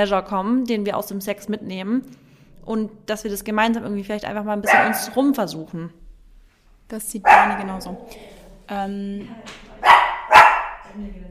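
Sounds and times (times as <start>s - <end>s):
speech: 0.0s - 6.0s, 6.9s - 9.6s, 11.0s - 11.2s
dog barking: 4.6s - 5.2s, 7.2s - 8.2s, 9.8s - 11.0s.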